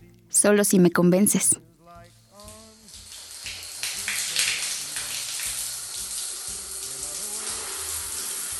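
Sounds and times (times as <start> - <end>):
speech: 0.4 - 1.7
shower water running: 2.1 - 8.5.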